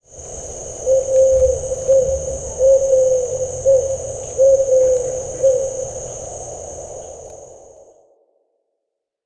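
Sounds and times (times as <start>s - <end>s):
Eurasian eagle-owl hooting: 0.6s - 6.1s.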